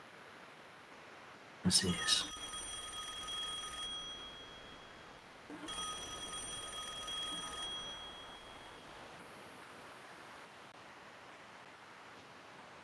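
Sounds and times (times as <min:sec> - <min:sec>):
speech: 0:01.7 - 0:02.4
telephone ringing with trilling bell tone: 0:01.7 - 0:09.2.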